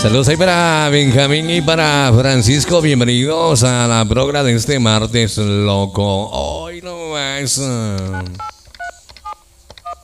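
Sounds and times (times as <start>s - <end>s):
speech: 0.0s - 8.6s
telephone dual-pitched beeps of an incoming call: 8.1s - 10.0s.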